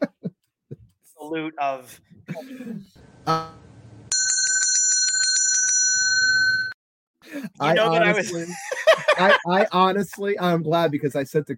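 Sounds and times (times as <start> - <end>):
laughter: 0.0 - 1.0, 7.4 - 9.9
speech: 1.2 - 3.7, 7.6 - 11.5
bright bell ringing in a rapid trilling burst: 4.1 - 6.8.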